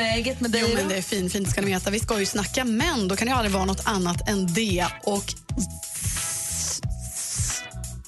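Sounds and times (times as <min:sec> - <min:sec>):
speech: 0:00.2 - 0:05.8
person imitating the sizzle of a hot grill: 0:05.5 - 0:07.9.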